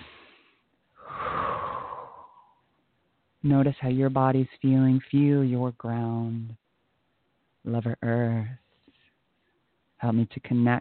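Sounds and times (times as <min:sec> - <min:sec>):
slow human breathing: 0:00.0 - 0:02.7
speech: 0:03.4 - 0:06.6, 0:07.6 - 0:08.6, 0:10.0 - 0:10.7.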